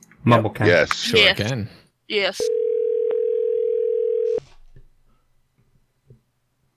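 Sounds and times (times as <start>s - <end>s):
speech: 0.2s - 2.6s
electronic phone call ringing tone: 2.4s - 4.4s.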